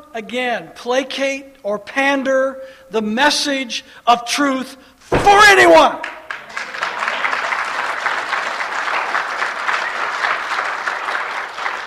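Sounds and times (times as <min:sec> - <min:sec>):
speech: 0:00.2 - 0:06.2
large audience clapping: 0:06.0 - 0:11.8.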